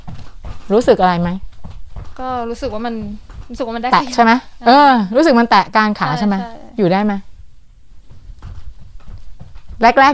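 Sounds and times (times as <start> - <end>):
feet stepping in place as a warm-up before exercise: 0.0 - 10.1
speech: 0.7 - 1.4, 2.2 - 7.3, 9.8 - 10.1.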